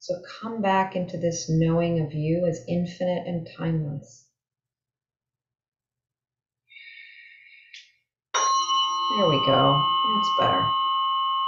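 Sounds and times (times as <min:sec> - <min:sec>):
speech: 0:00.0 - 0:04.2, 0:09.1 - 0:10.8
tuning fork ringing: 0:08.4 - 0:11.4.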